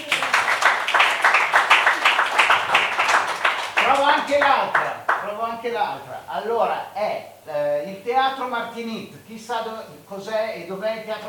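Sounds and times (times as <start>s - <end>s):
audience applause at a comedy night: 0.0s - 5.5s
speech: 4.1s - 11.2s.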